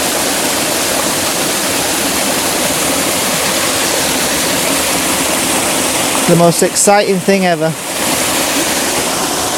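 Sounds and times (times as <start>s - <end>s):
mountain waterfall rushing: 0.0s - 9.5s
speech: 6.3s - 7.8s.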